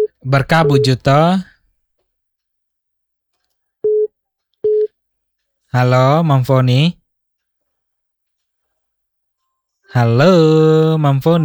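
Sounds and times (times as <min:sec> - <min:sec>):
speech: 0:00.2 - 0:01.5, 0:05.7 - 0:07.0, 0:09.9 - 0:11.4
telephone busy tone beeps after a call is suddenly cut off: 0:03.8 - 0:04.1, 0:04.7 - 0:04.9.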